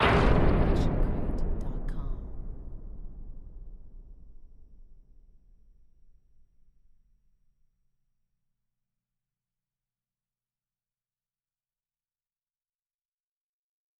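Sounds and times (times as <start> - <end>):
scary big hit: 0.0 - 5.4.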